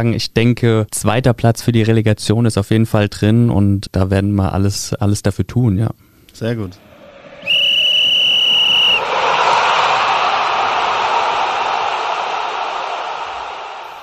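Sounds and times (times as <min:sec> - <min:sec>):
speech: 0:00.0 - 0:06.9
stadium crowd roaring: 0:06.7 - 0:14.0
long shrill referee's whistle blast for a penalty kick: 0:07.3 - 0:09.1.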